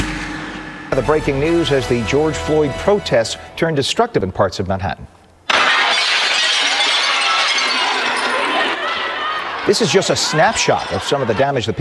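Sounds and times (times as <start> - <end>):
indistinct voices: 0.0 - 11.7
laughter: 0.0 - 11.7
speech: 1.0 - 5.2, 9.7 - 11.7
window glass being smashed: 5.5 - 10.1.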